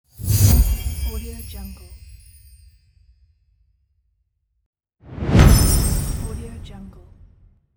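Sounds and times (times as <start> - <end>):
magic hit whoosh: 5.1 - 7.2.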